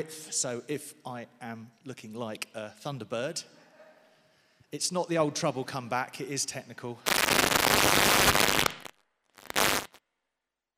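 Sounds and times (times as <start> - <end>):
speech: 0.0 - 3.6, 4.7 - 8.6
fireworks crackling and popping outside: 7.0 - 10.0.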